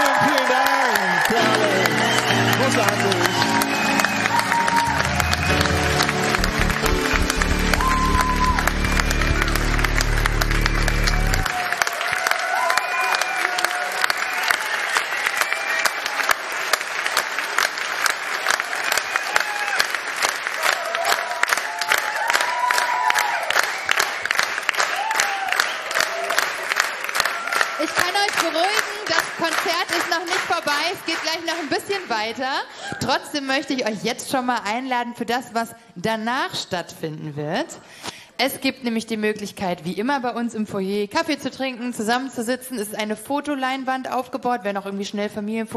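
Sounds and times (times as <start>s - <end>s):
cheers and excited voices from the crowd: 0.0s - 32.3s
large audience applauding: 0.0s - 32.7s
speech: 32.4s - 45.7s.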